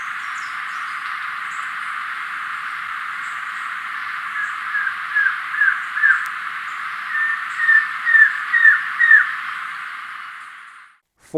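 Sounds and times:
masked trogon downslurred calls in Ecuador: 0.0s - 10.9s
background hiss: 0.0s - 11.3s.

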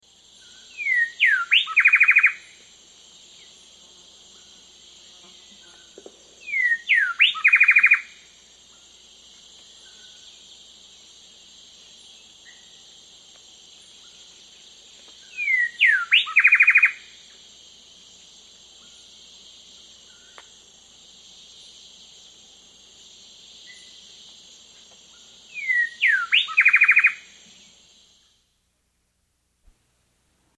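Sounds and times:
black-throated wren in South America: 0.4s - 2.6s, 6.4s - 8.2s, 15.2s - 17.2s, 25.2s - 27.4s.

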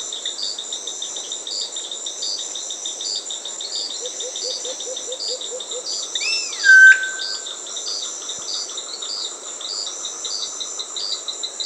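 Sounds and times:
constant high insect drone in Peru: 0.0s - 11.6s
pulsing chirps: 6.6s - 7.5s
solitary cacique giving a rising swoop into a whistled note in Peru: 6.6s - 7.5s.

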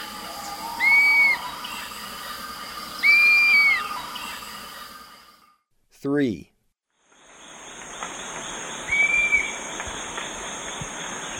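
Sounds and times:
dusky-capped flycatcher whistles in the eastern lowlands of South America: 0.0s - 1.5s, 3.0s - 3.9s, 8.9s - 9.6s
faint insect hum: 0.0s - 5.5s, 7.0s - 11.3s
speech: 6.0s - 6.5s.

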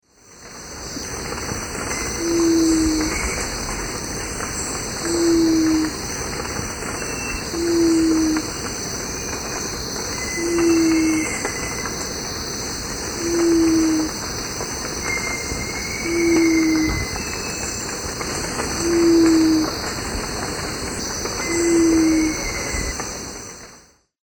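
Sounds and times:
Geotrygon montana singing in South American Eastern Lowlands: 2.0s - 6.1s, 6.8s - 8.7s, 9.9s - 11.8s, 13.2s - 14.3s, 15.0s - 17.9s, 18.5s - 19.9s, 21.0s - 23.0s.

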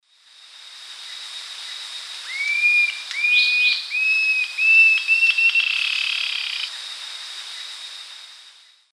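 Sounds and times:
Galbula albirostris song in South American Eastern Lowlands: 2.3s - 6.7s.

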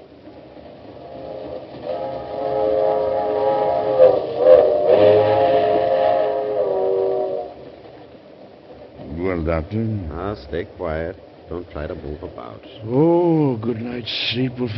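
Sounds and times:
moving passenger train rumble: 0.0s - 14.7s
passenger train whistle chord: 1.0s - 7.6s
speech: 9.5s - 14.7s.

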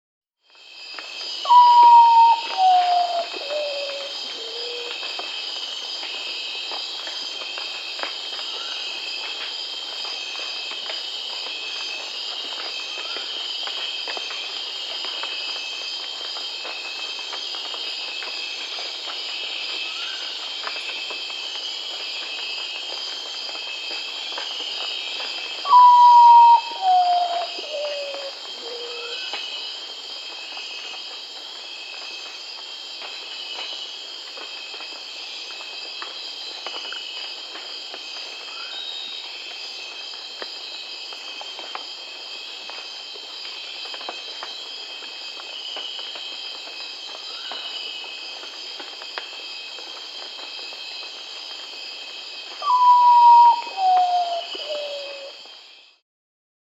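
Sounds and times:
Common Potoo Nyctibius griseus calling in South America: 1.5s - 4.9s, 25.7s - 29.1s, 52.6s - 55.3s.

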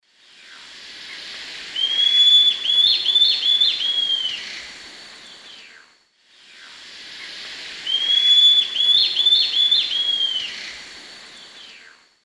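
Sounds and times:
Rhegmatorhina melanosticta song in the Eastern Lowlands of South America: 1.7s - 5.9s, 7.8s - 12.0s.

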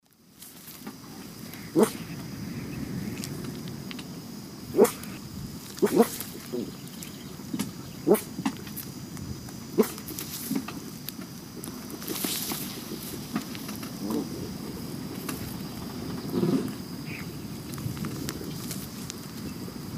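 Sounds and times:
Coragyps atratus calls in South America Eastern Lowlands: 0.8s - 8.6s, 11.8s - 19.8s.

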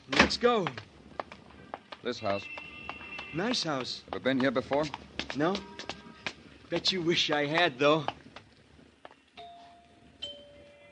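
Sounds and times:
speech: 0.3s - 0.9s, 2.0s - 2.6s, 3.3s - 6.0s, 6.7s - 8.1s
two-tone doorbell chime ringing at a house: 9.4s - 10.9s.

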